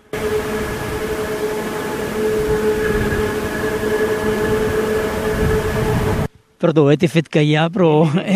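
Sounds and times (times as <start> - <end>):
train rumbling past on nearby railway: 0.0 - 6.3
faint tonal whine of passing train: 0.0 - 6.5
speech: 6.6 - 8.3.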